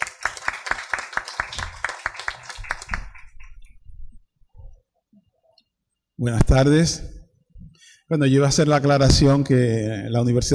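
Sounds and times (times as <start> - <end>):
audience applause welcoming a speaker at a university orientation event: 0.0 - 3.4
speech: 6.2 - 7.2, 8.1 - 10.5.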